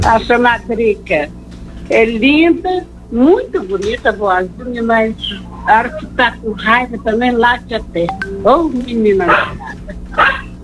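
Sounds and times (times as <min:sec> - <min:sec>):
speech: 0:00.0 - 0:10.6
dog barking and yipping: 0:09.2 - 0:10.6.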